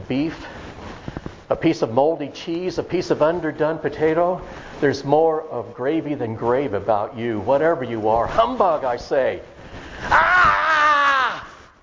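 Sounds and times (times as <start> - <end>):
speech: 0.1 - 0.6, 1.5 - 10.2
person imitating a ghost yelling: 10.1 - 11.6.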